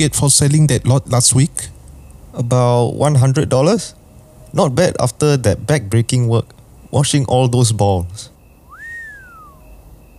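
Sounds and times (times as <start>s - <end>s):
speech: 0.0s - 1.8s, 2.4s - 8.3s
soft impressed human whistle: 8.7s - 9.8s.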